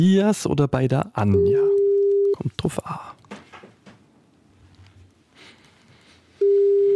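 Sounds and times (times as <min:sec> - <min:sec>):
speech: 0:00.0 - 0:01.7, 0:02.4 - 0:03.1
telephone ringback tone while placing a call: 0:01.4 - 0:02.3, 0:06.4 - 0:06.9
rustling: 0:03.2 - 0:06.9.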